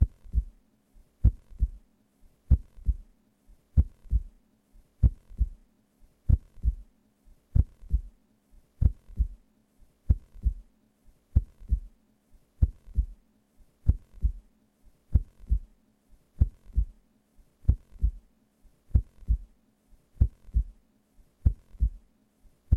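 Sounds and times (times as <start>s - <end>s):
slow heartbeat pulse: 0.0s - 0.6s, 1.2s - 1.8s, 2.5s - 3.1s, 3.8s - 4.4s, 5.0s - 5.6s, 6.3s - 6.9s, 7.5s - 8.2s, 8.8s - 9.4s, 10.1s - 10.7s, 11.3s - 12.0s, 12.6s - 13.2s, 13.8s - 14.5s, 15.1s - 15.8s, 16.4s - 17.0s, 17.6s - 18.3s, 18.9s - 19.6s, 20.2s - 20.8s, 21.4s - 22.1s.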